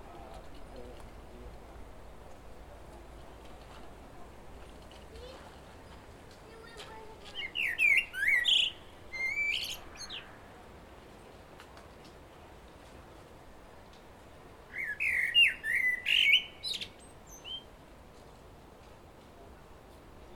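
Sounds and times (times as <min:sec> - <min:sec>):
Common blackbird Turdus merula singing a fluted warble: 0:07.3 - 0:10.3, 0:14.7 - 0:17.7.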